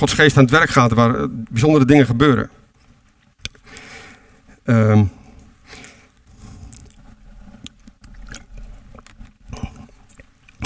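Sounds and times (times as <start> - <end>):
speech: 0.0 - 2.6, 4.7 - 5.2
person sipping water: 5.2 - 10.6
swallowing: 5.4 - 10.6.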